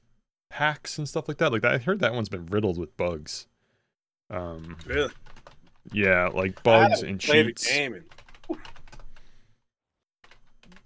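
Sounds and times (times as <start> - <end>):
speech: 0.5 - 3.5, 4.3 - 8.7
fingers typing on a computer keyboard: 4.6 - 6.7, 8.1 - 9.2, 10.2 - 10.8.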